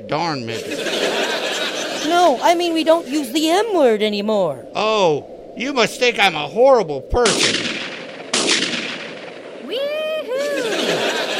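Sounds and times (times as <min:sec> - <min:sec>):
speech: 0:00.0 - 0:07.7
laughter: 0:00.5 - 0:03.2, 0:09.7 - 0:11.3
gunshot: 0:07.2 - 0:09.4
person whooping: 0:09.6 - 0:11.0.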